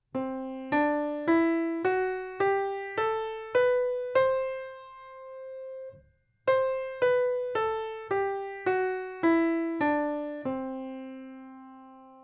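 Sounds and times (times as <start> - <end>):
music in Lydian mode: 0.2 - 12.2.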